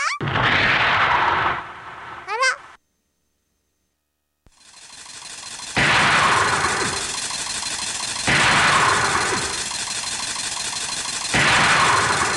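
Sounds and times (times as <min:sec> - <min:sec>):
explosions of unknown cause inside a shop: 0:00.2 - 0:02.4, 0:05.6 - 0:07.3, 0:08.2 - 0:09.8, 0:11.2 - 0:12.3.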